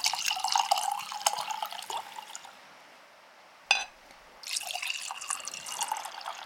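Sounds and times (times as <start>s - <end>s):
Zaire drink pouring into glasses: 0.0s - 2.5s, 4.4s - 6.4s
glass clink: 3.7s - 4.0s.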